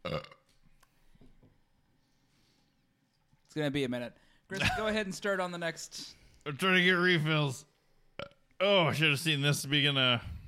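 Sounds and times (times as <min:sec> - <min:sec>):
loud burp during a beer tasting: 0:00.0 - 0:00.5, 0:08.2 - 0:08.4
speech: 0:03.6 - 0:07.7, 0:08.6 - 0:10.4.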